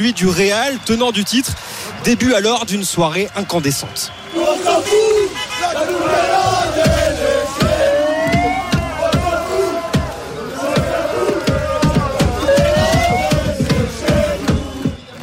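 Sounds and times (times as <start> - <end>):
speech: 0.0 - 7.2
large crowd of ultra supporters chanting: 4.1 - 15.2.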